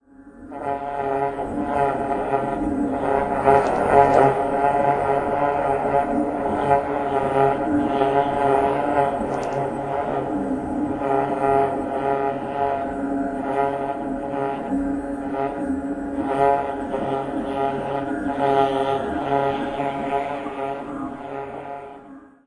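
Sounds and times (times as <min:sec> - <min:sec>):
creepy vocal ambience: 0:00.3 - 0:22.4.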